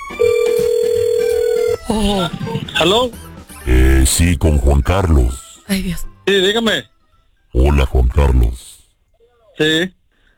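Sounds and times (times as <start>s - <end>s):
ringback tone of an outgoing telephone call: 0.0s - 1.9s
faint noise: 0.0s - 10.3s
speech: 1.9s - 6.9s, 7.6s - 8.7s, 9.6s - 10.0s.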